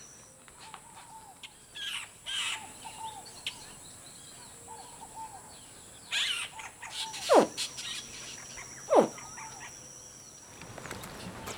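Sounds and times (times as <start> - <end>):
steady insect-like hum: 0.0 - 11.5
captive juvenile crocodilians giving distress calls while being shaken in a house: 6.1 - 9.9.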